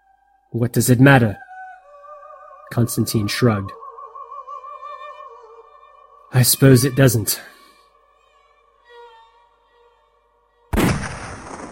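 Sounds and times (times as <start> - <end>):
speech: 0.5 - 1.4, 2.7 - 3.8, 6.4 - 7.6
rifle shot on a still morning: 10.8 - 11.7.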